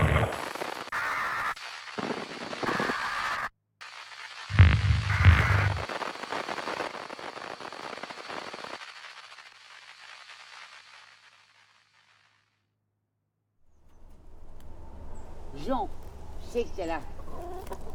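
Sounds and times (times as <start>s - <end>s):
steady hiss: 0.0s - 12.2s
hen clucking: 17.0s - 17.9s.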